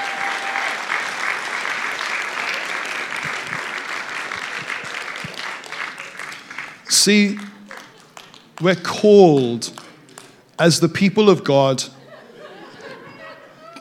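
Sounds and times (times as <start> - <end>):
audience applause: 0.0 - 8.6
speech: 7.0 - 7.5, 8.6 - 9.8, 10.6 - 12.0
laughter: 11.9 - 13.7.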